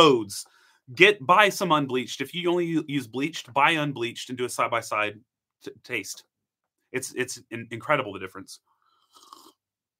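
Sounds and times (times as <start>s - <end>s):
speech: 0.0s - 6.3s, 6.9s - 9.3s
slurping sip of a drink: 9.0s - 9.7s.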